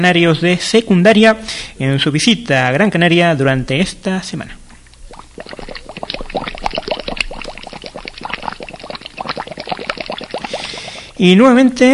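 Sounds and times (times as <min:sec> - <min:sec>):
speech: 0:00.0 - 0:04.6, 0:11.2 - 0:11.9
gas bubbles rising in volcanic cone water: 0:05.0 - 0:11.2.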